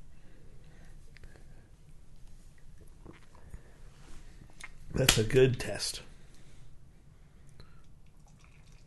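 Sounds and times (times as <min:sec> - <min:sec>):
speech: 0:05.0 - 0:06.1
shaken beer pouring into small sample glasses: 0:08.2 - 0:08.8.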